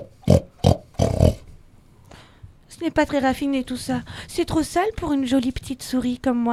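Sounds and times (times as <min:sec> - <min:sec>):
human voice imitating a pig grunting: 0:00.0 - 0:01.5
speech: 0:02.8 - 0:06.5.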